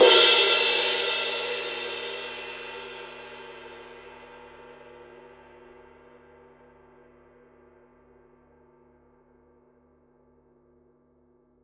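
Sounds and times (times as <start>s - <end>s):
22 inch blue bell ride cymbal struck on the edge: 0.0s - 3.4s.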